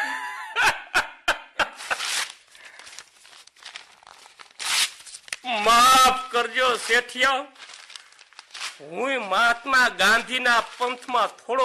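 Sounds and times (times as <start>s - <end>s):
paper documents torn by hand: 1.8s - 5.4s, 6.6s - 8.9s
paper rustling and crumpling: 1.8s - 5.5s, 6.4s - 11.6s
speech: 5.4s - 7.6s, 8.8s - 11.6s.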